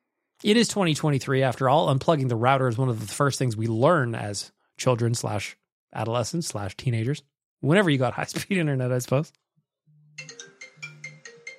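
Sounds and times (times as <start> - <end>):
speech: 0.4 - 9.4
phone ringtone for an incoming call: 9.9 - 11.5.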